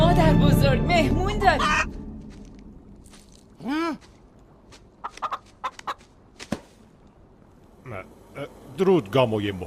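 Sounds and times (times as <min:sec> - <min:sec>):
speech: 0:00.1 - 0:01.9, 0:08.8 - 0:09.6
chicken clucking and squawking: 0:05.0 - 0:06.1.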